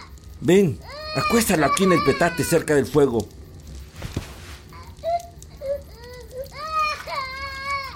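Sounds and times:
speech: 0.4s - 3.4s
sick baby crying: 0.8s - 2.8s, 4.7s - 7.9s.

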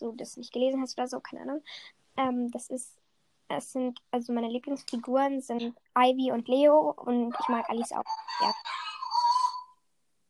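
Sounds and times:
speech: 0.0s - 8.8s
dog barking: 7.3s - 9.5s.

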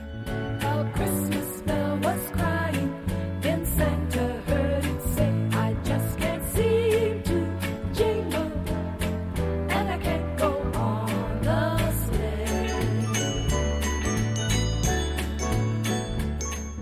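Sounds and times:
bouncing bass line: 0.0s - 16.7s
festive Christmas pop song: 0.0s - 16.7s
bright jingling bells on a steady beat: 12.4s - 16.7s.

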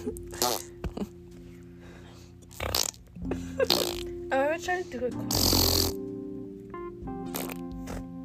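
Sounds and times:
speech: 0.0s - 0.7s, 4.6s - 6.0s
person imitating a wet fart noise with their mouth: 0.2s - 1.1s, 2.5s - 4.2s, 5.3s - 6.0s, 7.2s - 8.2s.

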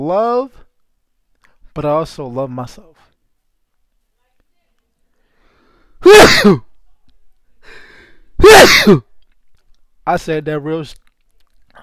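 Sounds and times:
speech: 0.0s - 0.6s, 1.8s - 3.1s, 6.0s - 6.7s, 8.4s - 9.1s, 10.1s - 11.0s
person sneezing: 6.0s - 6.7s, 8.4s - 9.2s.

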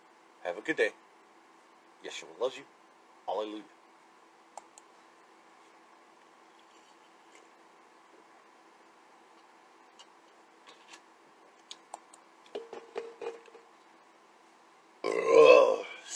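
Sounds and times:
speech: 0.4s - 1.0s, 2.0s - 3.8s
loud burp: 15.0s - 16.0s.

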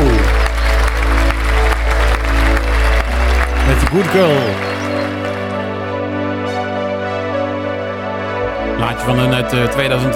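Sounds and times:
loud steady applause: 0.0s - 5.9s
sustained musical tones: 0.0s - 10.1s
speech: 3.9s - 4.7s, 9.0s - 10.1s.

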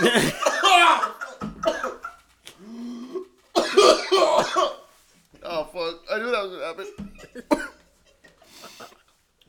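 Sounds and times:
speech: 0.0s - 0.4s
person coughing after inhaling smoke: 0.0s - 2.2s, 3.6s - 4.9s, 7.1s - 7.8s
person breathing: 2.5s - 3.4s, 8.4s - 9.1s.

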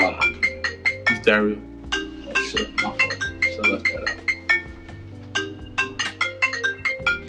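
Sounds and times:
phone melodic ringtone for an incoming call: 0.0s - 7.2s
speech: 1.3s - 1.7s, 2.5s - 4.3s.

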